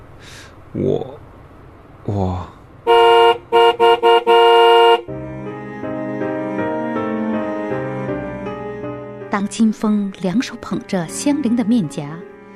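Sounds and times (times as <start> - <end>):
speech: 0.7 - 1.2, 2.1 - 3.0, 9.5 - 12.3
loud car horn honking: 2.8 - 5.1
soft music: 5.0 - 12.5.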